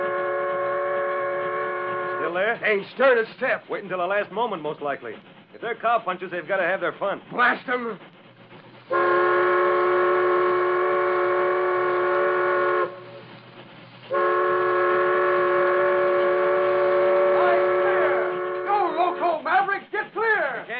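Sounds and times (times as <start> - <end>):
supply train whistle blowing: 0.0 - 2.4, 8.9 - 13.2, 14.1 - 19.4
speech: 2.3 - 8.1.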